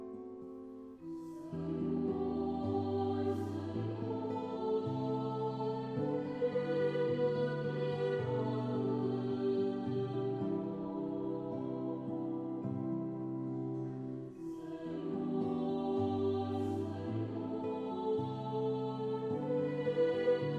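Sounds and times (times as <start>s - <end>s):
solo voice singing a Portuguese liturgical chant: 1.1s - 20.5s.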